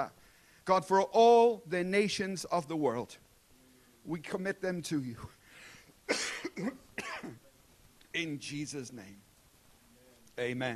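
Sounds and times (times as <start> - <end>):
speech: 0.0 - 3.2, 4.0 - 5.4, 6.1 - 7.4, 8.2 - 9.3, 10.4 - 10.7
harsh raspy coughs of a person with a long-term cough: 6.1 - 7.4.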